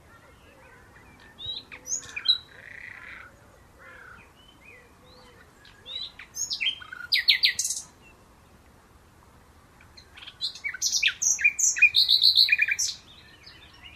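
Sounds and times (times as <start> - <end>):
Common nightingale singing, Luscinia megarhynchos: 0.0 - 8.6, 9.8 - 13.9.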